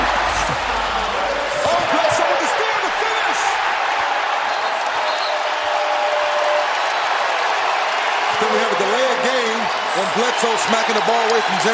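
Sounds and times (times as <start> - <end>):
big arena crowd roaring and cheering: 0.0 - 11.7
speech: 10.4 - 11.7.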